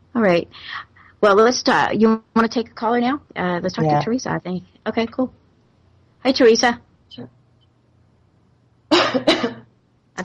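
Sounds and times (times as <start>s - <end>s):
speech: 0.2s - 5.4s, 6.2s - 7.4s, 9.1s - 9.6s
adult coughing: 8.9s - 9.7s.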